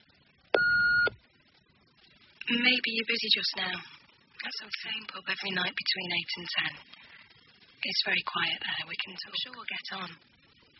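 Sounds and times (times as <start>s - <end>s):
answering machine beep: 0.6s - 1.2s
speech: 2.5s - 7.0s, 7.8s - 10.4s.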